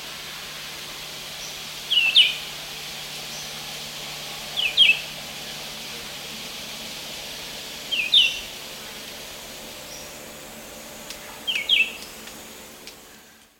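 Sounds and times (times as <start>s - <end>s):
faint steady hiss: 0.0s - 13.5s
red-eyed vireo in the Eastern Lowlands of South America: 1.4s - 2.5s, 4.5s - 5.7s, 7.8s - 9.0s, 11.1s - 13.4s.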